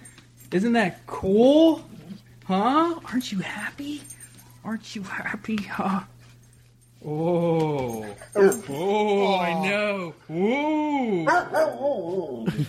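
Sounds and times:
speech: 0.5s - 1.9s, 2.5s - 6.1s, 7.0s - 12.6s
dog whimpering and barking excitedly: 8.1s - 8.8s, 11.3s - 12.4s.

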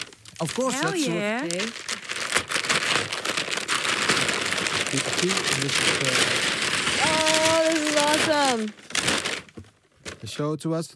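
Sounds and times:
gift wrapping paper crinkling and ripping as a gift is opened: 0.0s - 10.3s
speech: 0.4s - 2.0s, 4.9s - 8.9s, 10.2s - 10.9s.

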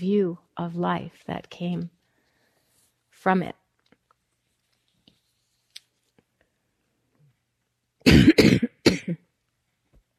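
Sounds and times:
speech: 0.0s - 2.0s, 3.2s - 3.6s
person coughing: 8.0s - 9.3s.

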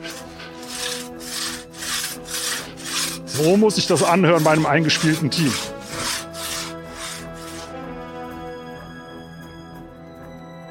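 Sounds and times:
hand saw rasping through hard oak disc: 0.0s - 7.9s
speech: 3.4s - 5.8s.

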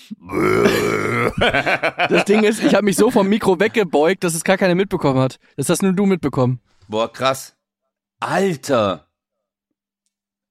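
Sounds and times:
speech: 0.1s - 0.7s, 1.4s - 7.6s, 8.2s - 9.1s
drawn-out low rumbling burp: 0.2s - 1.4s
laughter: 1.2s - 3.9s.

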